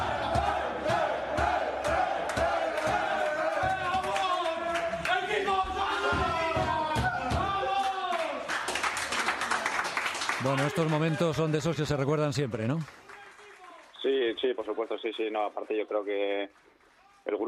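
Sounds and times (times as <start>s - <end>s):
football team clapping rhythmically in the locker room: 0.0s - 5.4s, 6.1s - 17.1s
football team shouting and chanting in the locker room after a match: 0.0s - 8.4s
speech: 10.4s - 13.0s, 14.4s - 17.4s.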